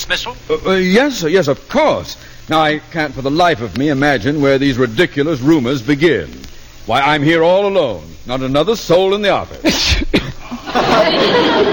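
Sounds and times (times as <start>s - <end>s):
speech: 0.1s - 11.7s
person sneezing: 9.6s - 10.4s
laughter: 10.4s - 11.7s.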